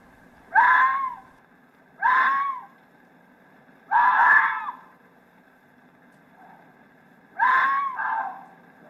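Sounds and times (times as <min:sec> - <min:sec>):
male and female fox screaming while mating: 0:00.5 - 0:01.3, 0:02.0 - 0:02.8, 0:03.8 - 0:05.0, 0:07.4 - 0:08.6.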